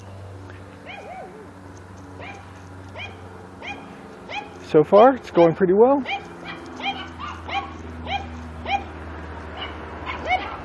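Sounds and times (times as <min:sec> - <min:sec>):
dogs yipping and whimpering: 0:00.8 - 0:01.5, 0:02.2 - 0:04.6, 0:06.0 - 0:10.6
speech: 0:04.7 - 0:06.2.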